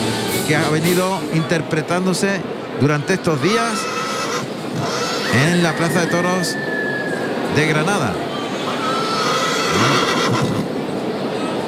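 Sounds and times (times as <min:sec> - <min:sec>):
open-air crowd noise in a bullring: 0:00.0 - 0:11.6
speech: 0:00.5 - 0:04.0, 0:04.8 - 0:06.8, 0:07.5 - 0:08.3
horse whinnying in a bullring: 0:03.1 - 0:06.0, 0:08.5 - 0:10.7.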